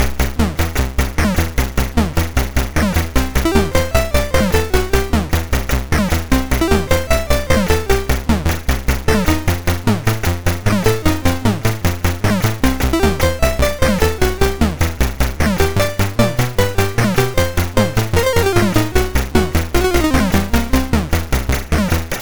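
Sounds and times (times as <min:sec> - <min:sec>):
MOS6581R3 chiptune music: 0:00.0 - 0:22.1.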